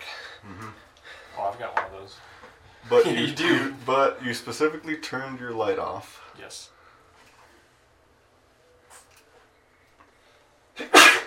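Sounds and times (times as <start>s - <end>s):
speech: 1.6s - 6.8s
person sneezing: 10.8s - 11.2s.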